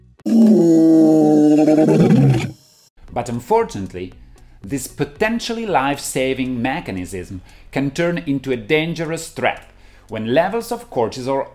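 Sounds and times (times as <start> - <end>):
speech: 0.3 - 0.8, 1.6 - 2.5, 3.2 - 11.5
lion roaring: 0.3 - 2.6.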